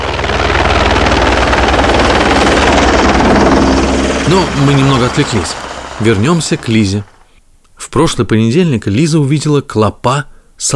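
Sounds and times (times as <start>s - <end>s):
helicopter rotors chopping with engine roar: 0.0s - 7.3s
speech: 4.3s - 7.1s, 7.8s - 10.7s.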